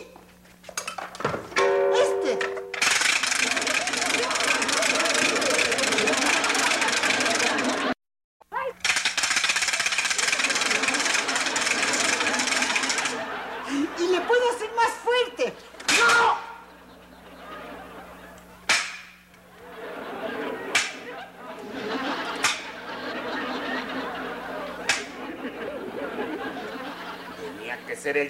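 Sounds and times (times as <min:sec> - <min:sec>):
laughter: 0:02.2 - 0:08.0, 0:09.7 - 0:18.7, 0:19.4 - 0:28.2
wooden ratchet rattle being spun: 0:02.7 - 0:07.9, 0:08.8 - 0:13.2
people talking with sharp shouted exclamations: 0:15.9 - 0:16.6.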